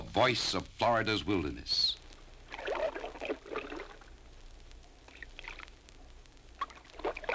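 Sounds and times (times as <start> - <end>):
speech: 0.2 - 2.0
fisherman quietly paddling a canoe, water swishing and splashing: 2.5 - 4.0, 6.6 - 7.3.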